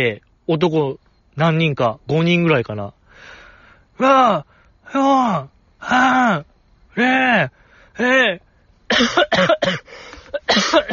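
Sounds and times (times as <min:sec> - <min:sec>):
speech: 0:00.0 - 0:03.4, 0:04.0 - 0:10.9
harsh coughs: 0:08.9 - 0:10.9.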